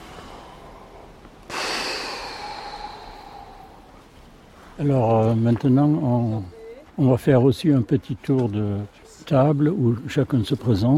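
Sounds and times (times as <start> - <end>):
group of fasters taking a deep breath in together: 0.0 - 4.0
speech: 4.8 - 10.9.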